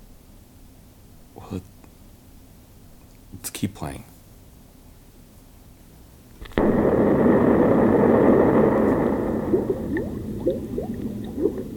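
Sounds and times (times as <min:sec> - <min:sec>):
speech: 0:01.4 - 0:01.8, 0:03.3 - 0:04.1
sudden loud burst: 0:06.4 - 0:11.5
water bubbling up in quick rising blips: 0:06.6 - 0:11.7.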